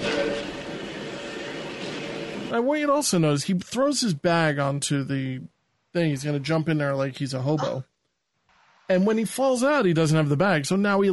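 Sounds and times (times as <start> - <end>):
train rolling along the tracks: 0.0 - 2.6
speech: 2.5 - 7.9, 8.9 - 11.1.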